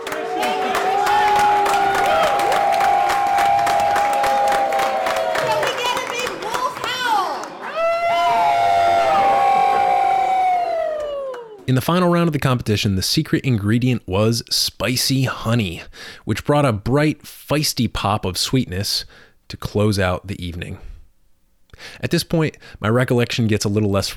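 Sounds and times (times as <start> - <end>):
indoor bar crowd howling like wolves: 0.0 - 5.8, 7.6 - 11.6
scattered clapping: 0.0 - 7.8
bar crowd cheering: 0.0 - 11.7
speech: 11.7 - 20.9, 21.8 - 24.1.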